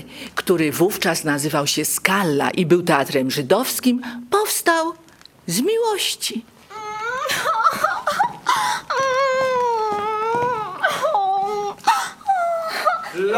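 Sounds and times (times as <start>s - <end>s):
speech: 0.0s - 6.5s
woman crying theatrically in a comedic theatre scene: 6.7s - 13.3s.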